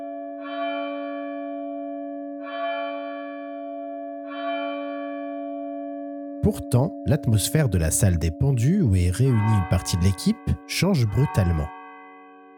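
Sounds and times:
church bell in a village steeple tolling midnight: 0:00.0 - 0:12.5
speech: 0:06.4 - 0:11.8.

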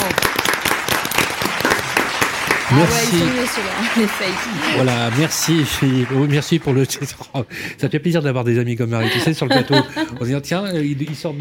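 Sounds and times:
studio audience applauding: 0:00.0 - 0:07.3
laughter: 0:02.7 - 0:07.1, 0:09.0 - 0:10.5
speech: 0:02.7 - 0:11.4.

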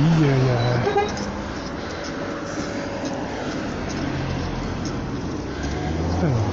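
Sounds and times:
busy road traffic with engines droning: 0:00.0 - 0:06.5
short tonal horn blare: 0:00.6 - 0:01.2.

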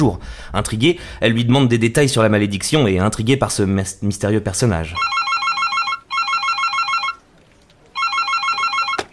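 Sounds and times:
speech: 0:00.0 - 0:05.2
telephone electronic trilling ring: 0:05.0 - 0:07.2, 0:08.0 - 0:09.1.

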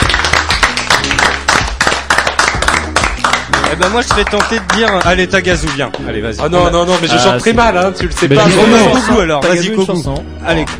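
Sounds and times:
crowd applause: 0:00.0 - 0:05.0
speech: 0:03.7 - 0:10.7.

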